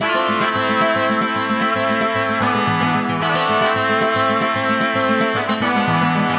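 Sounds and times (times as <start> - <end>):
melody loop in A minor: 0.0 - 6.3.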